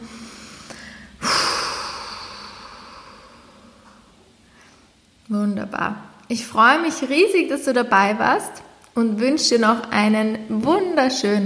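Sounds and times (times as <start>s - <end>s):
deep breath in and out through mouth during a guided breathing exercise: 0.0s - 5.0s
speech: 5.3s - 11.4s.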